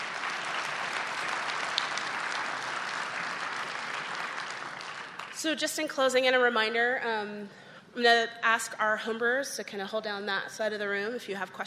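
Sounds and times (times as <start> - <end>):
audience applause: 0.0 - 5.4
speech: 5.4 - 11.6.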